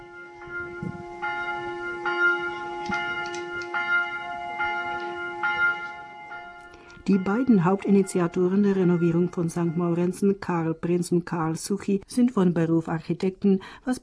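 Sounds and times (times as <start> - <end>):
two newly cast church bells from Passau ringing: 0.0 - 10.8
speech: 7.1 - 14.0.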